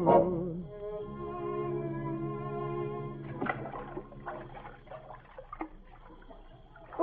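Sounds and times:
sustained organ-like musical tone: 0.0s - 7.0s
oars splashing in water while rowing a boat: 2.6s - 7.0s.

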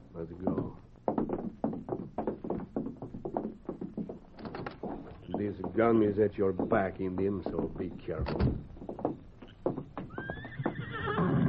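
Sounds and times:
speech: 0.2s - 0.8s, 5.5s - 8.7s
clopping hoofbeats of a paint horse: 0.2s - 11.4s
paint horse whinnying: 9.5s - 11.4s.

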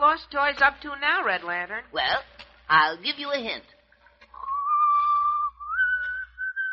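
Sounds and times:
speech: 0.1s - 3.8s
person whistling a tune: 4.5s - 6.7s.

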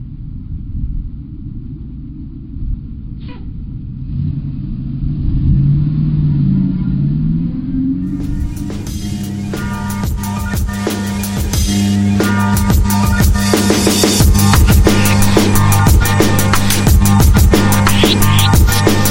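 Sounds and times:
bus engine revving and driving off: 3.2s - 13.6s, 14.2s - 19.1s.

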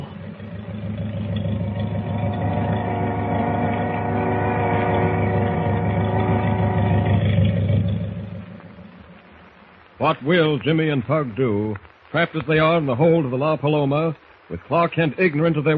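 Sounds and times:
boat motor starting and pulling out: 0.0s - 9.0s
speech: 10.0s - 15.7s.

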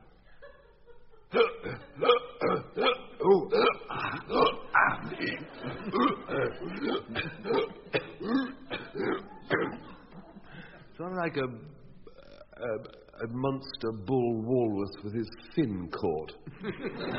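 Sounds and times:
laughter: 0.0s - 2.1s, 3.2s - 11.1s, 16.4s - 17.1s
loud hiccups: 1.3s - 5.3s, 5.9s - 10.0s
speech: 11.3s - 11.8s, 13.6s - 14.1s, 15.0s - 17.1s.

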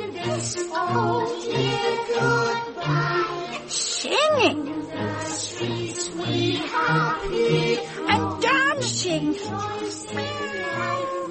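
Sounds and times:
speech: 0.3s - 11.2s
cat giving a long wavering meow: 10.2s - 11.2s.

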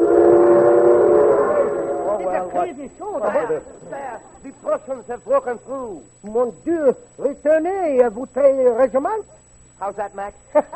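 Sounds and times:
train whistle: 0.0s - 2.6s
speech: 2.7s - 10.7s.

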